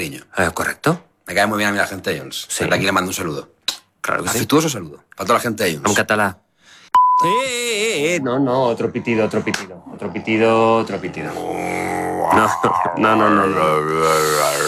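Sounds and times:
speech: 0.0s - 6.4s, 7.2s - 14.6s
person vocally imitating a censor beep: 7.0s - 8.1s
people vocalizing with wavering drawn-out tones: 7.3s - 14.6s.

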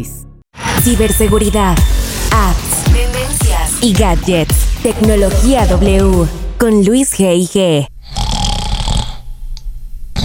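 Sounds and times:
speech: 0.0s - 2.8s, 3.8s - 7.9s
loud snoring: 8.0s - 9.5s.

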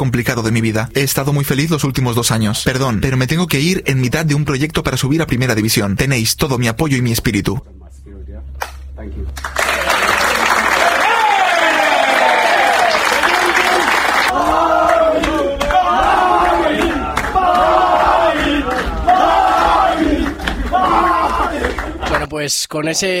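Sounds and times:
speech: 0.0s - 8.0s, 9.0s - 10.2s, 22.3s - 23.1s
teammates clapping in a locker room: 8.6s - 22.3s
teammates shouting and chanting in a locker room: 10.8s - 22.3s.

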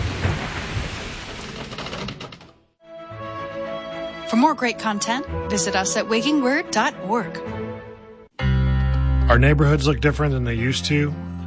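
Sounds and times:
deep thunder rumbling: 0.0s - 2.0s
rain-driven thunderstorm rain: 0.0s - 2.4s
speech: 4.3s - 7.6s, 9.3s - 11.2s.

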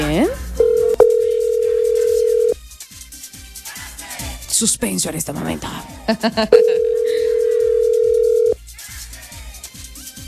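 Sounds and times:
telephone dial tone: 0.6s - 2.6s, 6.6s - 8.6s
speech: 4.6s - 6.8s
laughter: 5.4s - 7.8s.

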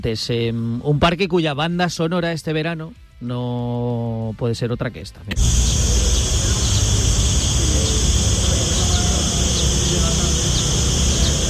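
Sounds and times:
speech: 0.0s - 5.8s
chorus of cicadas buzzing in a city park in Toledo during summer heat: 5.4s - 11.4s.

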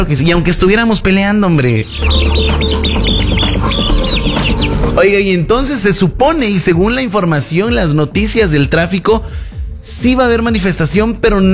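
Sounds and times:
speech: 0.0s - 11.5s
chicks peeping: 1.8s - 5.0s
steady low sound: 1.8s - 6.9s.

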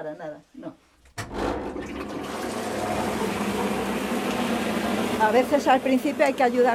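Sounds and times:
speech: 0.0s - 0.8s, 5.2s - 6.7s
grinder churning wet paper pulp with a wooden fork: 1.2s - 6.7s.

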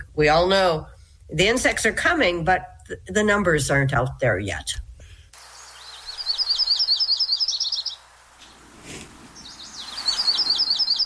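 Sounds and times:
speech: 0.2s - 4.9s
yellow-rumped warbler singing a rapid trill: 5.5s - 8.0s, 9.4s - 11.0s
soft rustling: 8.3s - 9.5s.

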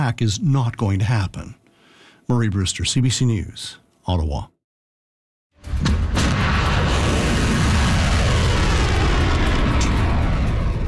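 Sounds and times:
speech: 0.0s - 1.6s, 2.3s - 4.5s
volley of Iranian ballistic missiles launching: 5.7s - 10.8s.

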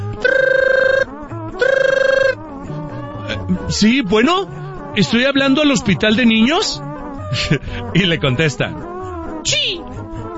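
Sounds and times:
electronic telephone ringing: 0.2s - 2.4s
speech: 3.7s - 9.6s.

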